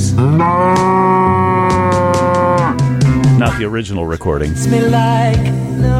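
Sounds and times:
cow mooing in long drawn-out calls: 0.2s - 3.2s
speech: 3.6s - 5.9s.

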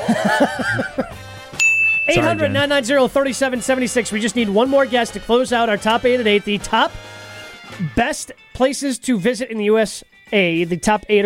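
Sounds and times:
people laughing and chuckling: 0.0s - 1.2s, 2.2s - 2.8s
speech: 0.3s - 1.0s, 2.1s - 7.2s, 7.9s - 11.2s
bright bell ding for a correct answer: 1.6s - 2.7s.

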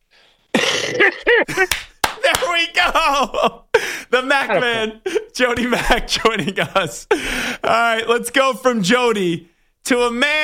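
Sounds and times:
loud sharp cough: 0.5s - 1.8s
speech: 0.9s - 10.4s
laughter: 1.0s - 7.8s
faint breathy lead-in before cough: 3.7s - 5.4s, 7.1s - 7.7s.

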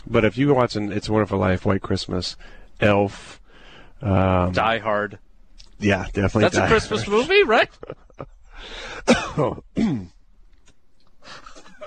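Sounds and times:
speech: 0.1s - 3.4s, 4.0s - 5.2s, 5.8s - 10.2s
sick person coughing: 9.0s - 10.2s.

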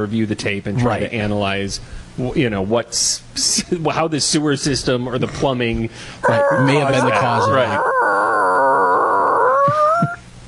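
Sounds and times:
speech: 0.0s - 7.9s
dog howling: 6.2s - 10.2s.

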